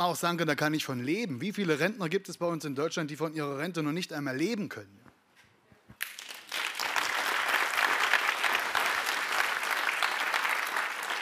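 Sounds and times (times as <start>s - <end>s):
speech: 0.0s - 5.1s
audience applause: 6.0s - 11.2s.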